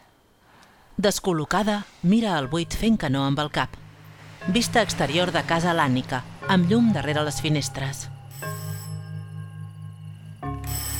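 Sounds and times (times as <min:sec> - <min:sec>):
speech: 0:01.0 - 0:03.8, 0:04.4 - 0:08.1
doorbell with buzzing electronic tone: 0:08.2 - 0:10.9.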